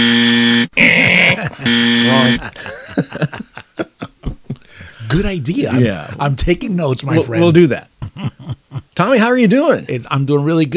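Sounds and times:
voiced imitation of a game-show buzzer: 0.0s - 2.6s
breathy rhythmic laughter: 0.8s - 6.2s, 7.2s - 9.0s
speech: 1.5s - 3.5s, 5.1s - 7.9s, 9.0s - 10.7s.

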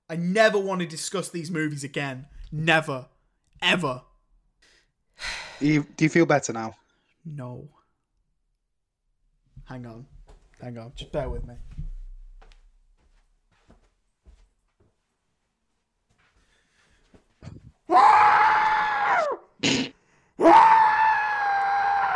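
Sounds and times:
speech: 0.1s - 4.1s, 5.2s - 7.8s, 9.7s - 11.8s
man screaming into a pillow: 17.9s - 19.8s, 20.4s - 22.1s.

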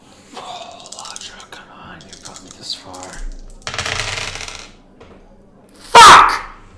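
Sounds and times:
dice rattling in a cupped hand: 0.6s - 4.8s.

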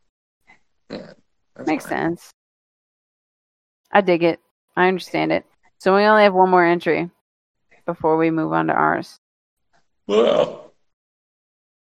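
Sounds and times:
speech: 0.9s - 2.4s, 3.9s - 7.2s, 7.9s - 9.2s, 10.1s - 10.6s
two people yawning together: 10.1s - 10.7s.

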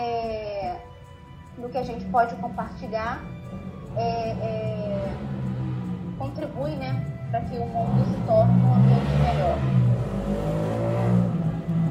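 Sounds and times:
speech: 1.7s - 3.4s, 4.0s - 5.4s, 6.2s - 10.8s
motorcycle engine droning as it passes by outside: 3.6s - 11.8s.

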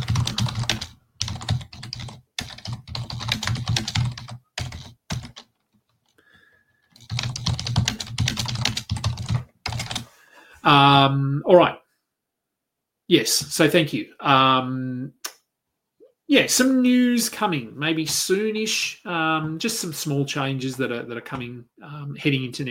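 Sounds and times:
fingers typing on a computer keyboard: 0.0s - 6.2s, 6.8s - 10.0s
speech: 10.6s - 11.8s, 13.1s - 15.2s, 16.3s - 22.6s.

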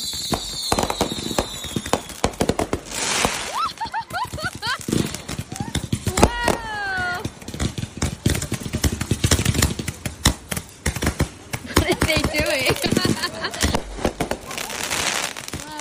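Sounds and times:
whistling firework rockets rising and falling: 0.0s - 9.9s, 11.0s - 15.7s
fireworks finale bangs and crackling bursts: 0.0s - 15.7s
laughter: 3.5s - 6.7s, 11.6s - 15.0s.

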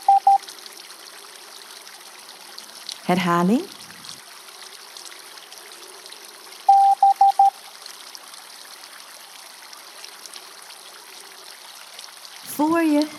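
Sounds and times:
electronic beeps: 0.0s - 0.4s
fountain water trickling and splashing on a town square: 0.0s - 13.1s
speech: 3.1s - 3.8s.

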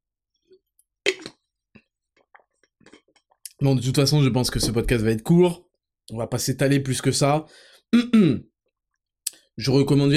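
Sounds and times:
person swallowing: 1.1s - 3.2s
person slurping a sip of a drink: 1.1s - 3.3s
soft wet mouth clicks: 1.1s - 3.6s
speech: 3.6s - 8.5s, 9.6s - 10.1s.

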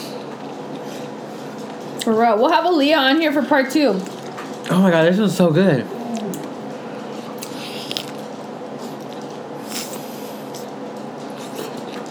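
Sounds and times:
speech: 2.0s - 6.0s
biting and chewing a spicy churro: 5.9s - 12.0s.

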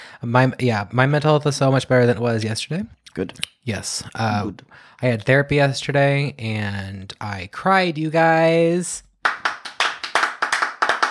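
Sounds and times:
speech: 0.2s - 9.1s
hand clapping applause: 9.2s - 11.0s.

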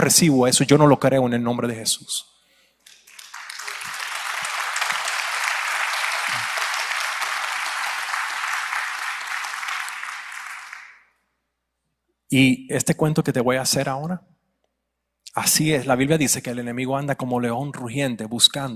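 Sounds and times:
speech: 0.0s - 2.3s, 12.3s - 14.4s, 15.4s - 18.7s
sizeable audience applauding: 2.9s - 11.0s.

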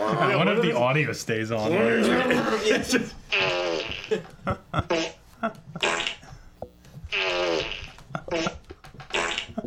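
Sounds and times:
speech: 0.1s - 3.5s, 4.1s - 5.1s
fart sound effects played on a soundboard: 3.3s - 6.3s, 7.0s - 9.6s.

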